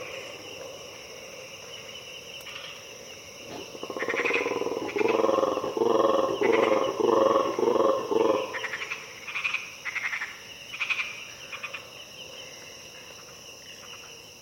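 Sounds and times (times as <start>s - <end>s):
insect chorus in the Harenna Forest: 0.0s - 14.3s
colobus monkeys uttering territorial calls at dawn in the Harenna Forest: 3.4s - 8.9s
frogs giving rattling calls in the Harenna Forest: 3.4s - 12.0s.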